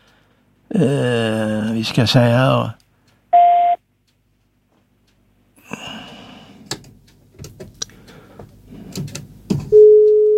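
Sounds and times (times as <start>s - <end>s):
speech: 0.7s - 2.8s
short telephone tone: 3.4s - 3.8s, 9.8s - 10.3s.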